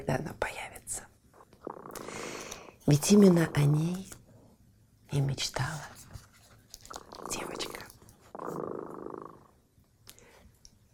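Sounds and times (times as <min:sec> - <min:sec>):
speech: 0:00.0 - 0:01.0, 0:02.9 - 0:04.1, 0:05.1 - 0:05.9
cat purring: 0:01.4 - 0:02.4, 0:06.9 - 0:09.6.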